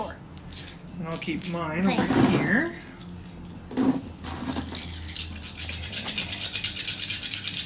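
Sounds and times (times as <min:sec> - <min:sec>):
dice rattling: 0:00.3 - 0:01.9, 0:04.2 - 0:07.6
speech: 0:01.0 - 0:02.9.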